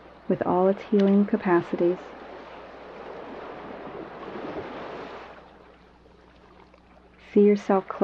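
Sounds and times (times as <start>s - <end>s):
ocean surf crashing: 0.0s - 5.5s
speech: 0.3s - 2.2s, 7.3s - 8.0s.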